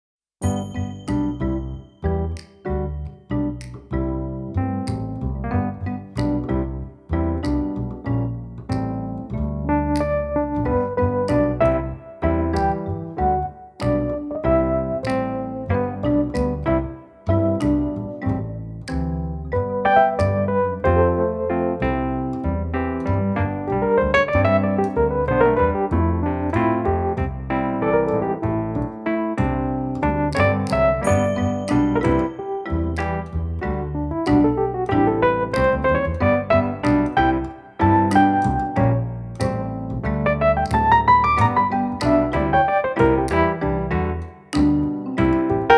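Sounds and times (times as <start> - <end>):
Wurly electric piano: 0.4 - 45.7.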